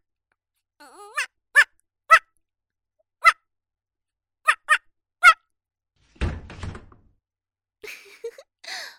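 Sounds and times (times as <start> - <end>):
person imitating a female dog barking with short sharp yelps: 0.8 - 2.3
brief thud: 6.1 - 7.1.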